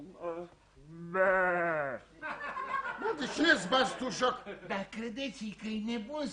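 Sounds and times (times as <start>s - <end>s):
person imitating a goat's bleat: 0.1s - 2.1s
laughter: 2.2s - 4.8s
speech: 3.2s - 6.3s.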